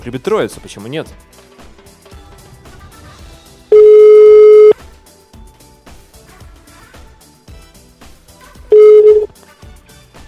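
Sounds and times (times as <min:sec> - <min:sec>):
speech: 0:00.0 - 0:01.5
telephone ringback tone while calling a restaurant: 0:03.7 - 0:04.8, 0:08.7 - 0:09.3.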